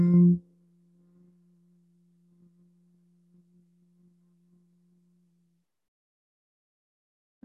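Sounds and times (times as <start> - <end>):
human humming on exhale in a throat chakra exercise: 0.0 - 0.4.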